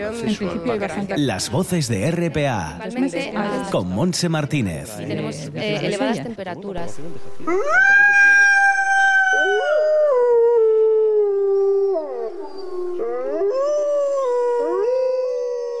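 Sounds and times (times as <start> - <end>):
speech: 0.0 - 8.0
Iberian wolves howling in a loud continuous chorus: 7.5 - 15.7.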